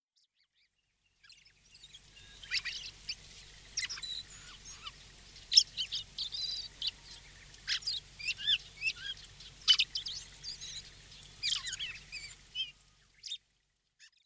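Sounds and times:
dusky thrush calling: 2.0 - 13.4.

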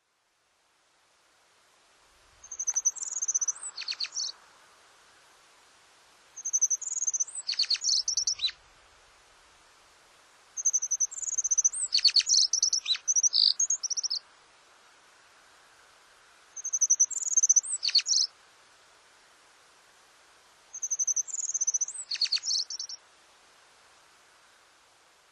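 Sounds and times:
Japanese Accentor calling at Norikura: 2.4 - 4.3, 6.4 - 8.6, 10.6 - 14.2, 16.6 - 18.3, 20.7 - 23.0.

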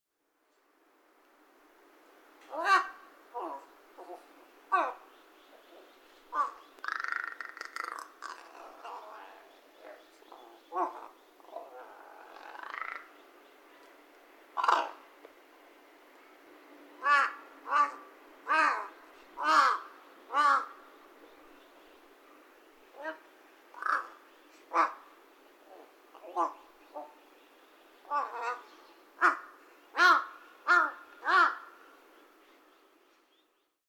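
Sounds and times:
Large-billed Crow calling in Saitama: 2.5 - 13.2, 14.6 - 15.0, 17.0 - 20.9, 22.9 - 27.2, 28.0 - 31.8.

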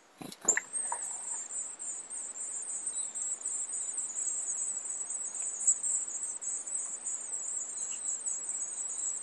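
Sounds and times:
varied tit in Chichibu: 0.2 - 9.1.

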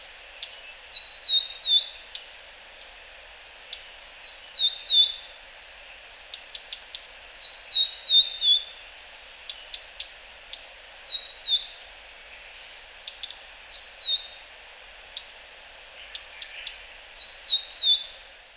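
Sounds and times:
Blue-and-white flycatcher descending whistled phrases in Hyogo, Japan: 0.4 - 2.0, 3.7 - 5.2, 6.6 - 8.7, 10.5 - 11.9, 13.0 - 14.4, 16.2 - 18.2.

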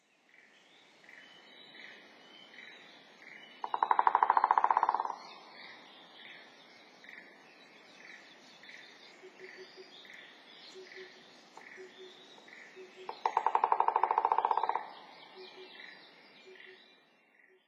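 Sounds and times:
White-backed Woodpecker: 1.1 - 6.5, 8.1 - 17.6.

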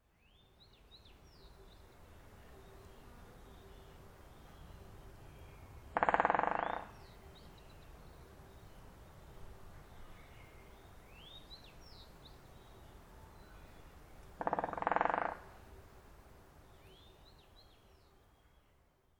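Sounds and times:
Great Spotted Woodpecker in Akagera: 5.8 - 7.7, 14.2 - 15.6.

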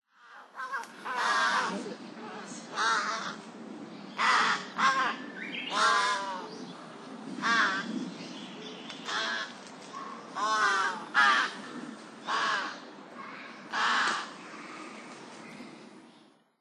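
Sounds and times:
large-billed crow calling: 0.1 - 3.4, 4.1 - 6.7, 7.4 - 7.9, 9.0 - 15.1.

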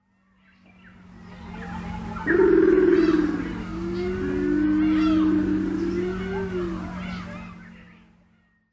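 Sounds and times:
Japanese wood pigeon calling: 2.2 - 6.8.

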